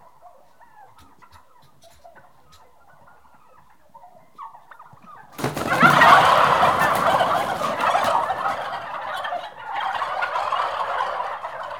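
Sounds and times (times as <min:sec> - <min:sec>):
six-month-old livestock turkeys gobbling: 0:00.0 - 0:11.7.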